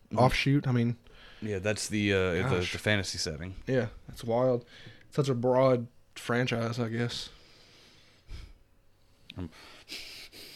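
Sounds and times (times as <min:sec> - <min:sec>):
speech: 0:00.2 - 0:07.4, 0:09.4 - 0:10.1
heavy breathing: 0:07.3 - 0:10.5.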